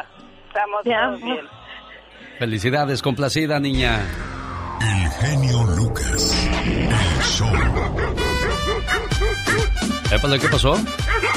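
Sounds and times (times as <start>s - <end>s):
speech: 0.6s - 1.6s, 2.4s - 8.2s, 10.1s - 11.3s
dog barking: 7.5s - 9.8s, 10.4s - 11.3s.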